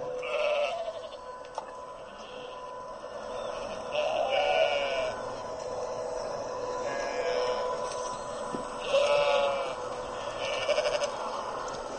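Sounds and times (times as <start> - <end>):
steady outdoor hum: 0.0 - 11.9
lambs bleating: 0.2 - 1.2, 3.6 - 5.2, 6.8 - 7.7, 8.8 - 11.3.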